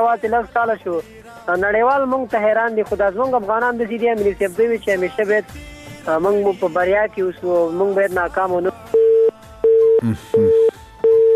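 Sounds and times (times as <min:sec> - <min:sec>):
speech: 0:00.0 - 0:08.9, 0:10.0 - 0:10.7
telephone busy tone after a call is cut off: 0:08.9 - 0:11.3
brief voice: 0:10.0 - 0:10.5.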